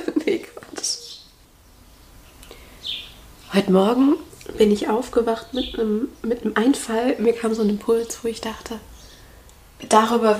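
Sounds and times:
short high bird chirps outdoors: 0:00.5 - 0:01.4, 0:02.8 - 0:03.6, 0:05.4 - 0:06.3
speech: 0:03.6 - 0:08.9, 0:09.9 - 0:10.3.

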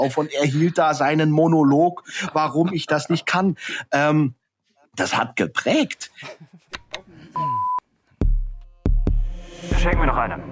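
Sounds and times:
speech: 0:00.0 - 0:04.4, 0:05.0 - 0:06.6, 0:09.6 - 0:10.5
short steady electronic alarm beep: 0:07.4 - 0:07.8.

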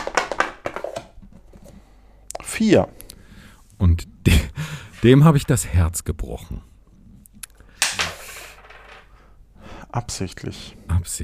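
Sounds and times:
speech: 0:02.6 - 0:03.0, 0:03.8 - 0:06.7, 0:10.0 - 0:11.2
2-euro coin flicked up and landing on a hard surface: 0:07.8 - 0:09.1.

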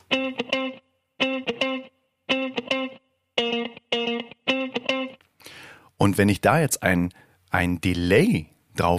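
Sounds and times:
funky electric guitar riff of choppy chord stabs: 0:00.0 - 0:05.6
speech: 0:06.0 - 0:08.9.

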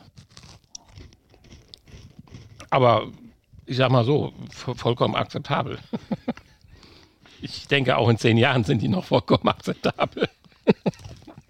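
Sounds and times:
crunchy chewing of a crisp lemon tartlet: 0:00.0 - 0:03.7, 0:10.4 - 0:11.4
speech: 0:02.7 - 0:06.1, 0:07.7 - 0:10.4
laughter: 0:05.8 - 0:07.0, 0:08.8 - 0:11.4.

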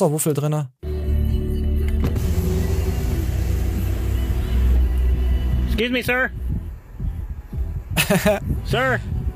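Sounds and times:
speech: 0:00.0 - 0:00.8, 0:05.8 - 0:06.4, 0:08.0 - 0:09.2
car engine idling with a low rumble: 0:01.7 - 0:07.4
laughter: 0:07.9 - 0:08.5.

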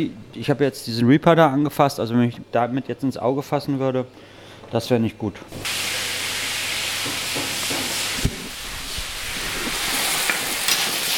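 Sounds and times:
speech: 0:00.0 - 0:05.8
garlic sizzling in hot olive oil in a pan: 0:05.5 - 0:11.1.

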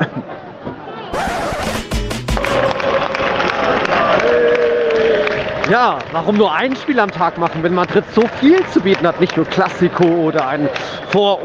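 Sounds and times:
football stadium crowd at Fuenlabrada home match against Malaga roaring and cheering: 0:00.1 - 0:11.4
loud thumps or bangs in a football stadium crowd: 0:01.2 - 0:02.8
speech: 0:05.7 - 0:11.4.

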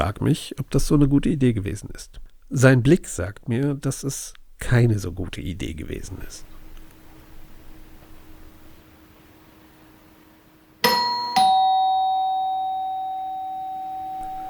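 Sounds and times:
speech: 0:00.0 - 0:06.5
doorbell ding-dong chime: 0:10.8 - 0:14.4.

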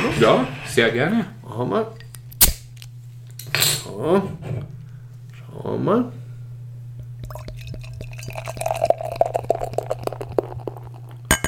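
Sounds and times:
speech: 0:00.1 - 0:02.0, 0:03.9 - 0:04.8, 0:05.6 - 0:06.2
beer pouring into a glass with gurgles and fizz: 0:07.2 - 0:11.4.

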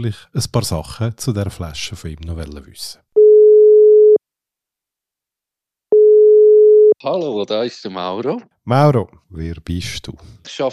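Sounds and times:
speech: 0:00.0 - 0:03.0, 0:07.0 - 0:10.7
telephone ringback tone on an outgoing call: 0:03.2 - 0:04.2, 0:05.9 - 0:07.0.

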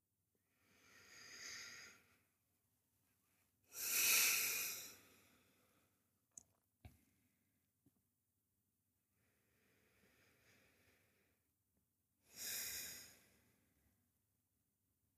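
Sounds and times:
slow deliberate belly breathing during a guided breathing exercise: 0:00.5 - 0:02.3, 0:03.7 - 0:06.0, 0:09.2 - 0:11.4.

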